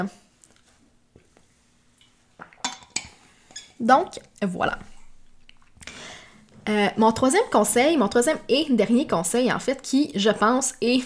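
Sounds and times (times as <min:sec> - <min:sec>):
speech: 0:00.0 - 0:00.2, 0:03.8 - 0:04.9, 0:06.7 - 0:11.0
person sipping water: 0:00.4 - 0:06.6
glass clinking: 0:02.6 - 0:03.8.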